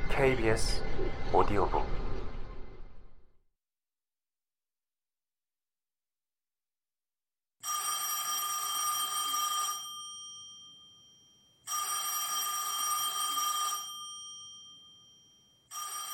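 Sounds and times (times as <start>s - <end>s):
speech: 0.2s - 2.0s
telephone ringing with bright electronic trill: 7.7s - 16.1s.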